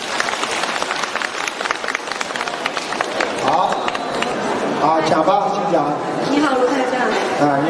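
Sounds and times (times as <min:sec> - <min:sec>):
large audience applause: 0:00.0 - 0:04.8
speech: 0:05.0 - 0:07.6.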